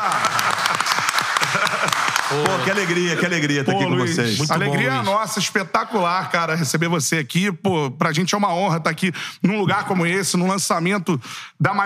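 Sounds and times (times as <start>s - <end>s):
small group clapping: 0.0s - 3.8s
laughter: 0.0s - 5.2s
speech: 2.3s - 11.8s.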